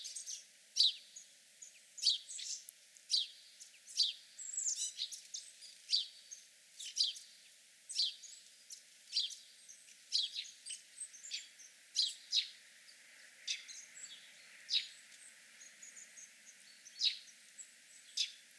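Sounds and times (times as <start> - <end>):
house sparrow chirping: 0.0 - 6.2, 9.1 - 18.4.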